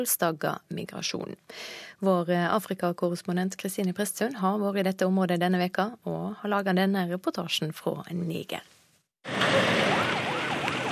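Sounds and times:
speech: 0.0 - 8.8
engine and road noise of emergency vehicles driving out: 9.2 - 10.8
wailing siren of emergency vehicles at an airport in Diffa Niger: 9.3 - 10.8.

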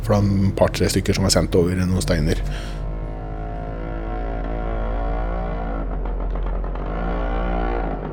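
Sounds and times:
speech: 0.1 - 2.8
moped two-stroke engine droning: 2.4 - 8.1
rattly clatter: 4.4 - 8.1.

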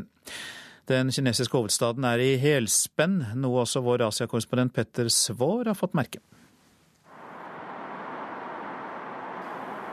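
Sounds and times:
speech: 0.9 - 6.4
car whooshing past on a city avenue: 7.1 - 9.9.

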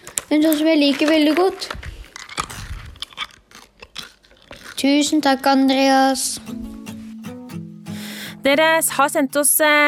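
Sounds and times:
chewing gum: 0.0 - 5.6
speech: 0.3 - 1.8, 4.8 - 6.7, 8.4 - 9.8.

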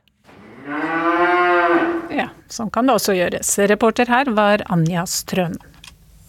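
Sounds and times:
cow mooing: 0.3 - 2.3
speech: 2.5 - 5.7.

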